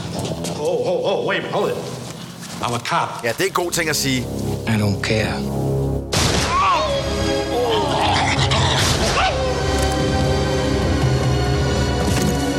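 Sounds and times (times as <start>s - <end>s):
dense loud movie soundtrack: 0.0s - 12.5s
speech: 0.6s - 1.9s, 2.6s - 5.7s
loud gunshot in a movie scene: 6.1s - 6.6s.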